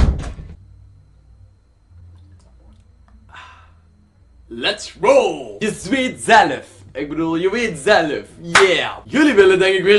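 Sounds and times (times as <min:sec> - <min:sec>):
small door rattling open: 0:00.0 - 0:00.6
low hum: 0:00.0 - 0:09.9
speech: 0:04.5 - 0:09.9.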